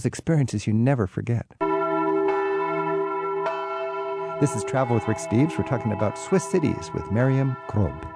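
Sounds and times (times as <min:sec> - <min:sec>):
speech: 0:00.0 - 0:01.6, 0:04.4 - 0:08.1
large church bell rung by a ringer swinging its clapper: 0:01.6 - 0:08.1.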